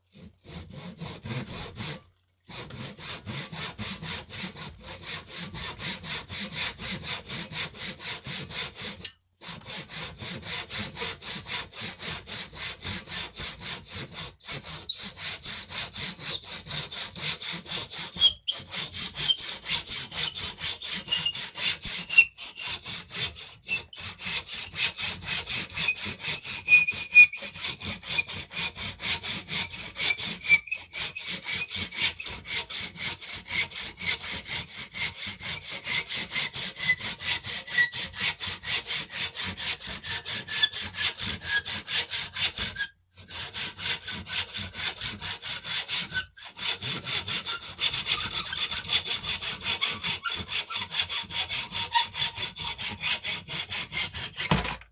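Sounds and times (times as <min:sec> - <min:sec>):
saw cutting: 0:00.0 - 0:54.9.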